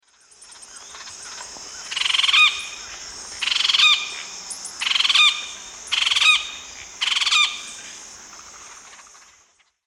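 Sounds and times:
Melanerpes cruentatus call in the Eastern Lowlands of South America: 1.8s - 8.0s.

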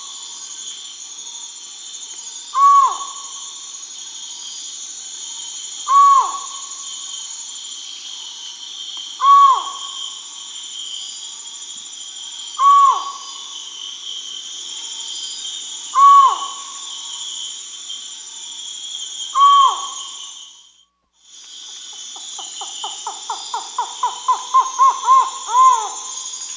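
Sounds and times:
steady insect buzz: 0.0s - 26.5s
collared forest-falcon calling in South America: 2.5s - 3.4s, 5.9s - 6.8s, 9.2s - 10.0s, 12.6s - 13.4s, 16.0s - 16.8s, 19.3s - 20.2s, 22.1s - 26.5s.

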